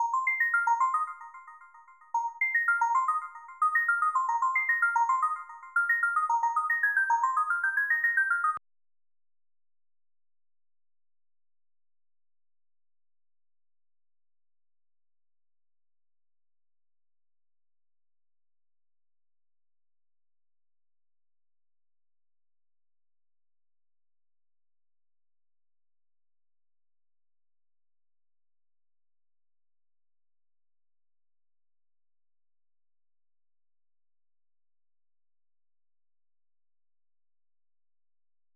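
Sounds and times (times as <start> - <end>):
sine synth tone in A: 0.0 - 8.6.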